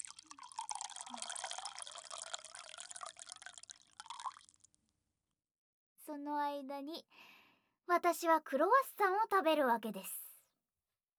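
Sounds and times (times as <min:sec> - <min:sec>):
hot water pouring in a faint steady stream: 0:00.0 - 0:04.7
speech: 0:06.1 - 0:07.3, 0:07.9 - 0:10.2.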